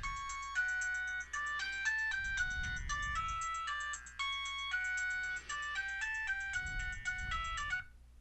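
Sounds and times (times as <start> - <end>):
mobile phone electronic ringtone melody: 0.0 - 7.9.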